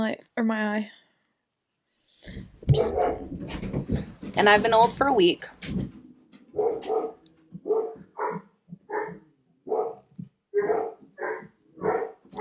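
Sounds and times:
speech: 0.0s - 1.0s, 2.2s - 6.0s, 6.6s - 8.4s
dog whining yips: 2.7s - 3.3s, 6.6s - 10.0s, 10.6s - 12.3s
dogs barking upstairs: 2.7s - 3.4s, 6.5s - 12.3s.

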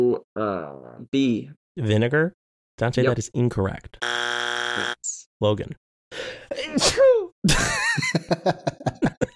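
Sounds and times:
speech: 0.0s - 9.3s
loud sneeze: 6.5s - 7.3s
laughter: 7.5s - 9.3s.

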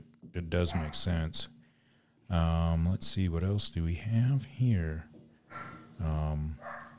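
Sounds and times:
speech: 0.4s - 1.6s, 2.3s - 5.1s, 6.0s - 6.8s
dogs barking: 0.7s - 1.2s, 5.5s - 6.0s, 6.6s - 6.9s.

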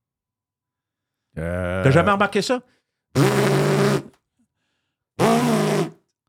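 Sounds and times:
speech: 1.4s - 3.5s
voice imitating a loud buzzing cell phone vibration: 3.2s - 4.1s, 5.2s - 6.0s.

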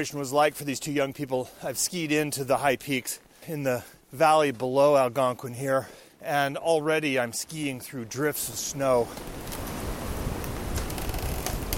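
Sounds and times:
speech: 0.0s - 9.6s
fierce winter wind roaring through frozen trees on snowy high peaks: 0.0s - 11.7s
frozen trees popping and creaking in fierce winter wind: 9.1s - 11.7s.

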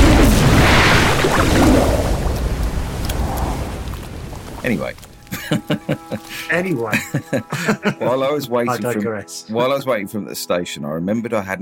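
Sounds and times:
explosion boom with a broad roaring rumble: 0.0s - 4.6s
speech: 4.6s - 11.6s
laughter: 5.3s - 9.0s.

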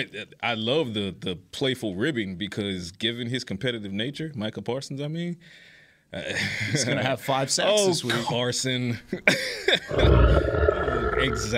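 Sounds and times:
speech: 0.0s - 11.5s
deep guttural burp-like grunt: 9.9s - 11.5s.

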